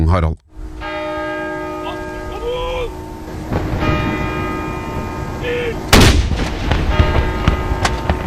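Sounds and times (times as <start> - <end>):
outdoor ambience: 0.0 - 8.2
speech: 0.1 - 0.4
church bells ringing: 0.7 - 8.2
cannon mourning salute fired by the Norwegian Armed Forces: 2.9 - 8.2.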